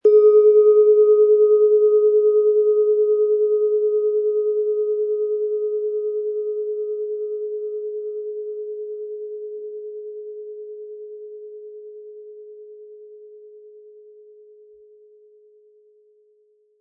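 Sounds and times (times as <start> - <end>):
12.9 cm singing bowl weighing 320 to 400 grams struck with mallet: 0.0 - 12.3.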